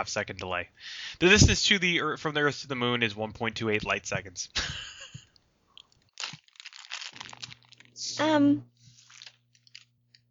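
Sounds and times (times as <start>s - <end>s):
speech: 0.0s - 4.9s, 8.2s - 8.7s
person chewing crisps loudly: 5.7s - 8.0s, 8.8s - 10.2s
crisp wrapper crinkling: 5.8s - 8.0s, 8.8s - 10.2s.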